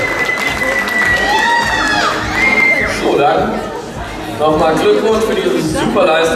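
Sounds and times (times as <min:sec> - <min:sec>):
audience screaming and cheering: 0:00.0 - 0:04.4
speech: 0:04.5 - 0:06.3.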